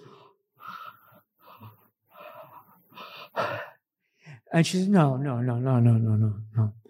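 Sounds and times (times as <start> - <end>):
person breathing heavily with jaw pulled down in breathing therapy: 0.0 - 4.5
speech: 4.5 - 6.8.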